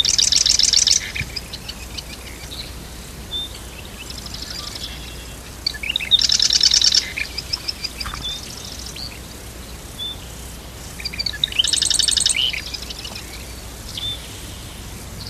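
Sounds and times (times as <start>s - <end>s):
marsh wren rattling song in Dorchester County Maryland: 0.0s - 15.2s.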